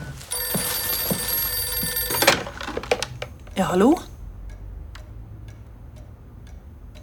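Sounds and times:
old-style telephone bell ringing in an antiquarian bookshop: 0.1 - 3.2
clattering handling noises: 0.3 - 3.6
speech: 3.6 - 4.1.

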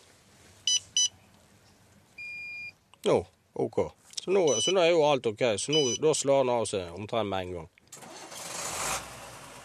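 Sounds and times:
speech: 3.0 - 7.8
car engine cranking, starting and idling: 7.9 - 9.6.

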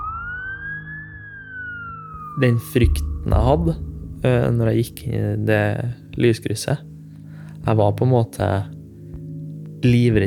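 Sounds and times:
police car siren wailing: 0.0 - 3.2
speech: 2.4 - 6.9, 7.6 - 8.8, 9.8 - 10.2.

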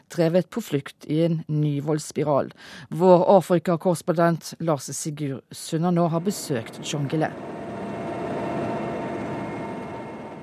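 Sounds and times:
speech: 0.2 - 7.6
Russian UN helicopter engine and rotor drone flying into Jongle state in South Sudan: 6.3 - 10.4.

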